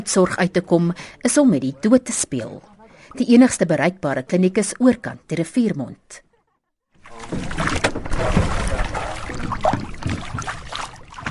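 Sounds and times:
speech: 0.0s - 6.3s
oar strokes rowing a rowboat across a river mouth: 7.0s - 11.2s
water sloshing and splashing around a rowboat hull: 7.0s - 11.2s.

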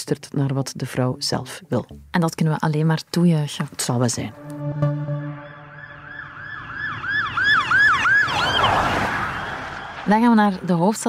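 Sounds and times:
speech: 0.1s - 5.1s, 10.1s - 11.0s
brief horn-like blast: 4.3s - 6.8s
low road noise: 4.3s - 11.0s
ambulance siren wailing: 4.5s - 10.1s.

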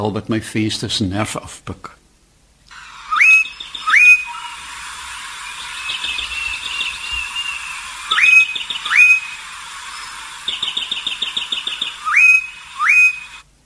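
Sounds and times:
speech: 0.0s - 2.0s
bar-throated apalis calling: 3.0s - 13.4s.

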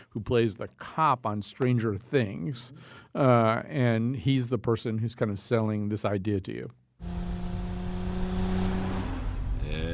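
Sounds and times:
speech: 0.2s - 7.1s
car engine revving in a TV commercial: 7.0s - 9.9s.

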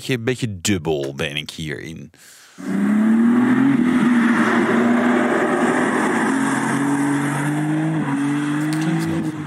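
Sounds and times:
speech: 0.0s - 3.8s
tuned inline-six car engine revving: 2.6s - 9.4s.

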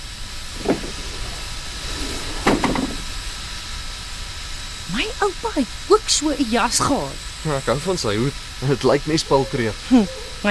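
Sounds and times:
steam train hissing at standstill: 0.0s - 10.5s
knock: 0.6s - 1.1s, 2.4s - 3.0s
metal clanks: 0.6s - 3.0s
speech: 5.1s - 10.5s.

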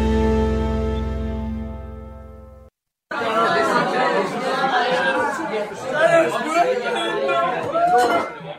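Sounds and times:
sustained musical tone ringing: 0.0s - 2.7s
dense crowd chattering and laughing at an office Christmas party: 3.1s - 8.5s.

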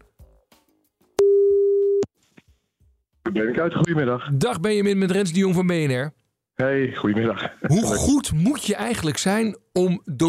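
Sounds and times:
steady mid-pitched telephone tone as a call is placed: 1.2s - 2.1s
speech: 3.3s - 10.2s.

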